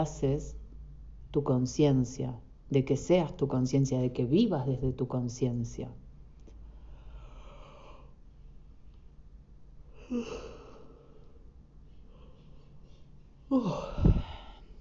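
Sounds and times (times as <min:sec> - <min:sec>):
speech: 0:00.0 - 0:00.6, 0:01.3 - 0:06.0, 0:10.1 - 0:10.5, 0:13.5 - 0:14.1
faint hum: 0:00.0 - 0:14.8
person yawning: 0:10.0 - 0:11.0, 0:13.5 - 0:14.6.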